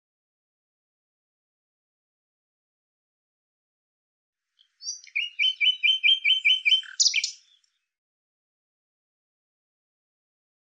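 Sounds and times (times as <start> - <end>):
bird singing buzzy chirps: 4.6 - 7.7.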